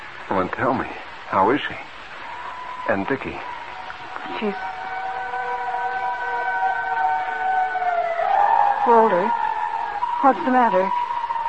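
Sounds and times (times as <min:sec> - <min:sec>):
speech: 0:00.3 - 0:01.9, 0:02.9 - 0:03.5, 0:04.3 - 0:04.7, 0:08.8 - 0:09.4, 0:10.2 - 0:11.0
fire siren wailing: 0:02.2 - 0:11.4.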